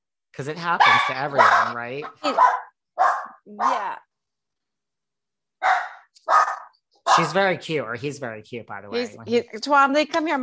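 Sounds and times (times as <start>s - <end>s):
speech: 0.4s - 2.6s, 3.5s - 4.1s, 7.2s - 10.4s
dog barking: 0.8s - 3.9s, 5.6s - 7.4s.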